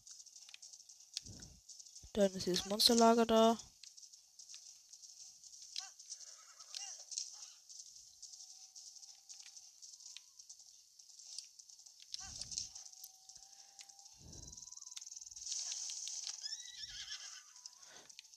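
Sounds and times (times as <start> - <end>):
horse hooves clip-clopping: 0.0 - 18.3
speech: 2.2 - 3.7
horse whinnying: 16.4 - 17.9.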